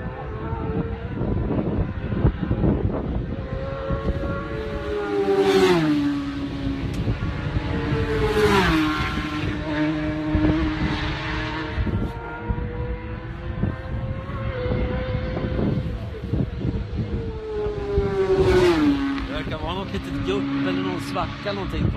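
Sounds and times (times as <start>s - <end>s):
racing motorcycle engines howling before braking: 0.0s - 21.9s
speech: 21.4s - 21.9s.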